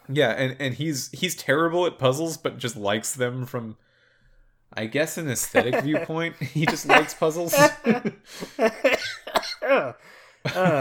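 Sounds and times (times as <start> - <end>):
speech: 0.1 - 3.9, 4.7 - 10.7
laughter: 5.4 - 9.2, 10.5 - 10.7
coughing fit with harsh raspy coughs: 6.7 - 7.9, 8.7 - 10.7.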